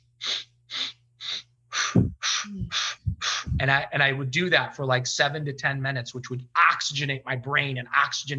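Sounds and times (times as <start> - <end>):
sharp forceful breaths in a breathing exercise: 0.0 - 3.6
soft low tapping thumps: 2.0 - 3.9
speech: 2.0 - 8.3.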